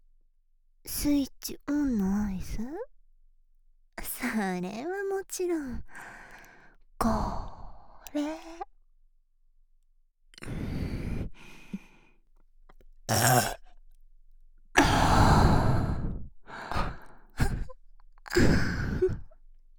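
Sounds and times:
speech: 0:01.0 - 0:02.9, 0:04.3 - 0:06.1, 0:07.0 - 0:07.5, 0:08.1 - 0:08.7
breathy burps: 0:13.1 - 0:13.7
heavy exhales and sighs: 0:14.8 - 0:19.4.

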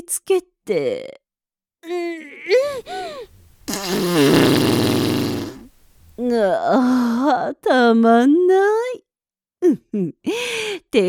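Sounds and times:
speech: 0:00.1 - 0:01.2, 0:01.8 - 0:04.6, 0:06.2 - 0:09.0, 0:09.6 - 0:11.0
middle-aged woman's short breathy vocal sounds: 0:01.9 - 0:03.3
loud buzzy fart from a middle-aged woman: 0:03.7 - 0:05.7.

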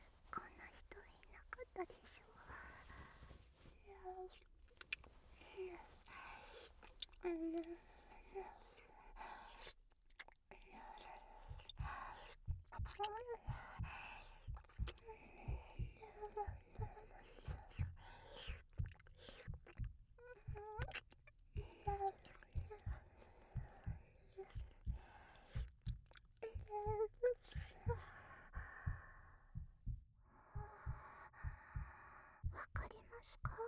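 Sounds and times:
faint indistinct vocal sounds: 0:00.0 - 0:33.6
speech: 0:01.8 - 0:02.3, 0:04.1 - 0:04.5, 0:05.6 - 0:08.6
heartbeat heard through someone's back: 0:11.4 - 0:33.6.

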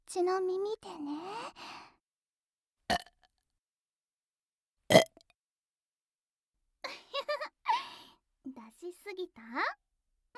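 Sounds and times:
speech: 0:00.2 - 0:01.6, 0:09.1 - 0:09.8
loud burps: 0:02.9 - 0:03.1, 0:04.9 - 0:05.2.

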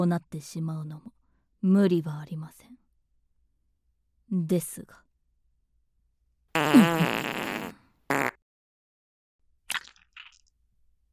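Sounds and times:
speech: 0:00.0 - 0:02.8, 0:04.3 - 0:05.0
farts: 0:06.6 - 0:08.4.

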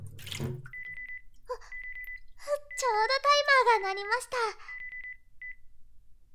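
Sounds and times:
hot water pouring out of a cup: 0:00.0 - 0:01.1
water dripping: 0:00.0 - 0:02.8
speech: 0:03.0 - 0:04.7.

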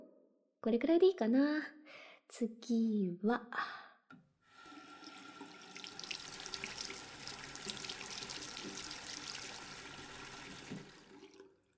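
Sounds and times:
speech: 0:00.7 - 0:03.8
hot water filling a washbasin: 0:04.5 - 0:11.7.

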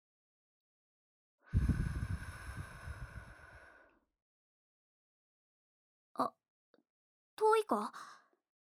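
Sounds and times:
single breath blown straight onto a microphone: 0:01.6 - 0:03.6
speech: 0:06.2 - 0:06.4, 0:07.4 - 0:08.2.

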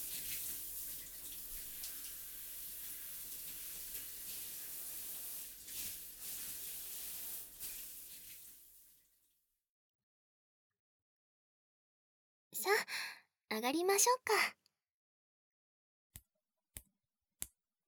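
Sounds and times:
water pouring from a tap or shower head in a bath: 0:00.0 - 0:09.2
speech: 0:13.6 - 0:14.6.

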